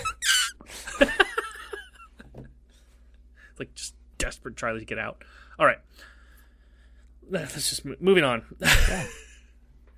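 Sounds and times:
person vocally imitating a squeaky fart: 0:00.0 - 0:00.6
speech: 0:04.4 - 0:06.2, 0:07.2 - 0:09.3.

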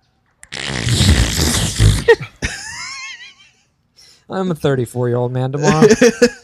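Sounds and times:
voice imitating a cake fart with a sputtering raspberry: 0:00.4 - 0:02.4
speech: 0:04.3 - 0:06.4
laughter: 0:05.6 - 0:06.4.

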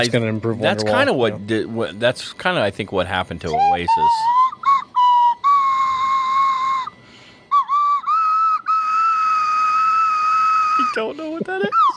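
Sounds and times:
speech: 0:00.0 - 0:04.4, 0:11.0 - 0:11.8
slide whistle notes: 0:03.4 - 0:11.0
laughter: 0:10.8 - 0:11.9.

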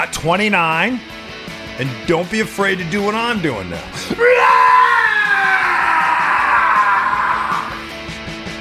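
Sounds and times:
speech: 0:00.0 - 0:01.2, 0:01.8 - 0:04.9
man yelling into a steering wheel: 0:04.1 - 0:07.7.

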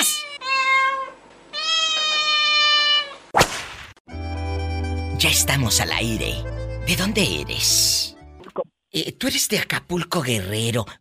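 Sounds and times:
cat meowing: 0:00.0 - 0:03.3
sharp broadband crack: 0:03.3 - 0:04.0
speech: 0:05.2 - 0:08.1, 0:09.0 - 0:10.9.

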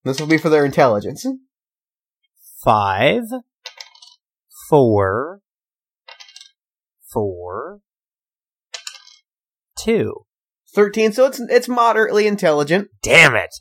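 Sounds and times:
speech: 0:00.0 - 0:01.5, 0:02.6 - 0:03.5, 0:04.7 - 0:05.4, 0:07.1 - 0:07.8, 0:09.8 - 0:13.5
four six-sided dice clattering onto a hard surface: 0:00.1 - 0:00.8, 0:03.6 - 0:04.2, 0:06.1 - 0:06.6, 0:08.7 - 0:09.3.

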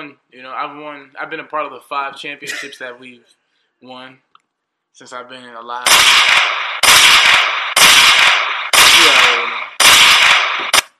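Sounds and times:
speech: 0:00.0 - 0:04.3, 0:05.0 - 0:07.6
gunshot sound effects: 0:05.8 - 0:10.9.

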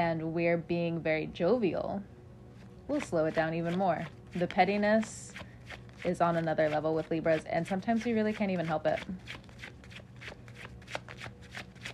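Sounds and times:
speech: 0:00.1 - 0:02.2, 0:02.9 - 0:09.5
tarot cards shuffled by hand: 0:02.6 - 0:11.9.

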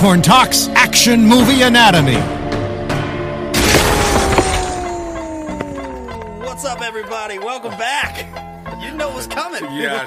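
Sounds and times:
speech: 0:00.0 - 0:02.4, 0:06.7 - 0:10.0
loud broadband explosion blast: 0:03.6 - 0:05.7
crackling debris: 0:03.6 - 0:06.2.

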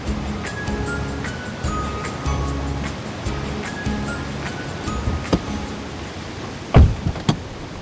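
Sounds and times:
ocean surf rushing at a beach: 0:00.0 - 0:07.8
sharp knocks: 0:06.8 - 0:07.4.

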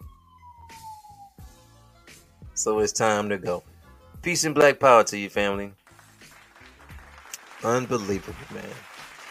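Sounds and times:
police siren wailing while passing: 0:00.0 - 0:01.7
speech: 0:02.6 - 0:05.8, 0:07.6 - 0:08.9.

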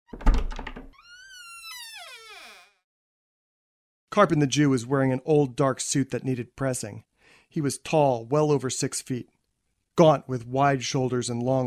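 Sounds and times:
door hinge creaking: 0:00.1 - 0:02.8
speech: 0:04.2 - 0:09.3, 0:10.0 - 0:11.6.

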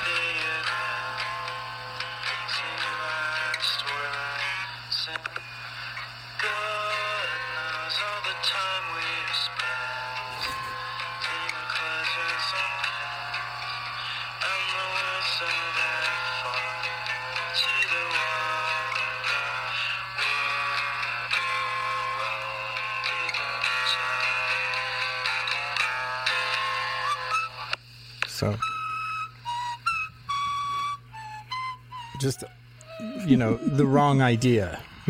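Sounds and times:
lo-fi demo music played back from a micro cassette tape: 0:00.0 - 0:35.0
micro cassette tape hiss: 0:00.0 - 0:35.0
speech: 0:32.2 - 0:32.6, 0:33.2 - 0:35.0.

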